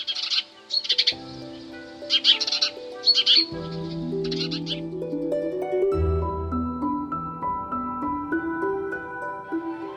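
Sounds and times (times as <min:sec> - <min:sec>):
Eurasian tree sparrow calls: 0:00.0 - 0:04.9
soft instrumental music: 0:00.0 - 0:09.9
speech: 0:03.4 - 0:04.8.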